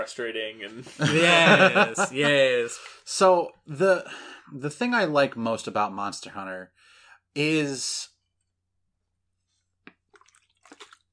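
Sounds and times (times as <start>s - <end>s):
speech: 0.0s - 6.8s, 7.4s - 8.1s
laughter: 0.8s - 2.6s
person sipping and swallowing water: 9.8s - 11.1s
short gulp of water: 9.9s - 11.1s
slurpy bursts of drinking water: 10.1s - 11.1s.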